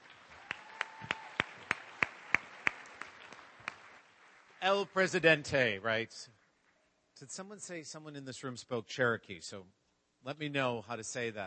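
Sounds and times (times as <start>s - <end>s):
sparse audience applause: 0.0s - 6.2s
speech: 4.6s - 6.4s, 7.2s - 11.4s.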